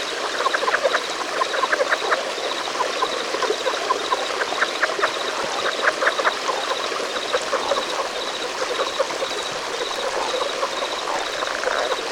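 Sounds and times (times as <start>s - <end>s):
relict leopard frogs Rana onca calling in chorus: 0.0s - 12.1s.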